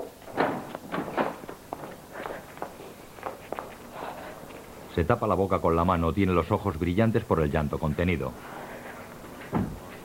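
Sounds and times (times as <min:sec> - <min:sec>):
hurried footsteps of someone leaving: 0:00.2 - 0:04.8
speech: 0:05.0 - 0:08.6.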